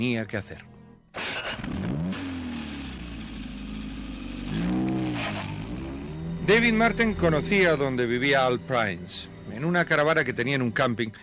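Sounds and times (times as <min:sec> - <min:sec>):
speech: 0:00.0 - 0:00.8, 0:06.5 - 0:11.2
car engine starting and revving inside a parked car: 0:01.2 - 0:08.2.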